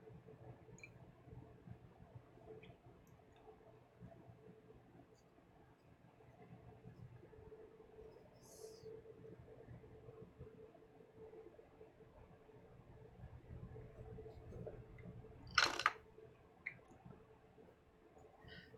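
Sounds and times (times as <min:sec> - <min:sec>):
steady low room hum: 0:00.0 - 0:18.7
person drinking and swallowing water: 0:15.5 - 0:16.0.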